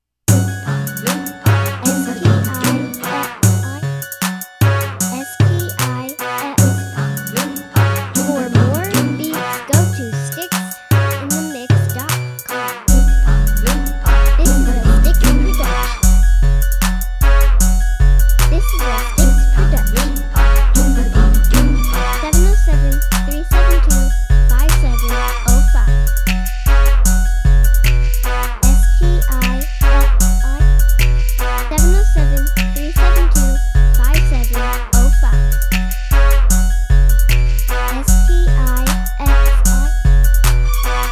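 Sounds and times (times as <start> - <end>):
oompah music: 0.3 - 41.1.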